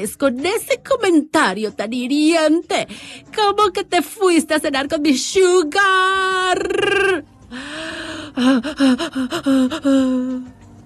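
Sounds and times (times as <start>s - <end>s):
speech: 0.0s - 7.8s, 8.4s - 10.6s
longer strained breaths: 2.9s - 3.3s, 7.4s - 10.7s
person gasping in quick ragged bursts: 7.5s - 10.6s.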